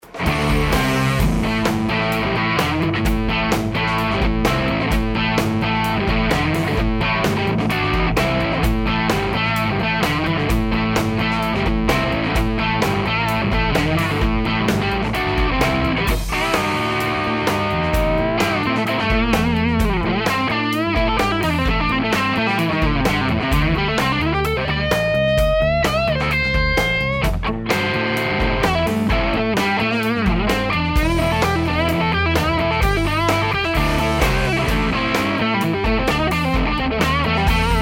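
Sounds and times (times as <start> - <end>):
high-gain Tele electric guitar on neck pickup: 0.0 - 37.8.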